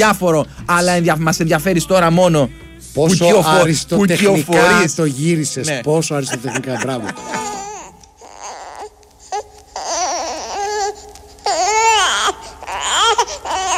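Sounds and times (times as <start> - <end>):
speech: 0.0 - 7.6
baby crying: 4.6 - 4.9, 6.5 - 13.7
laughter: 6.0 - 7.8.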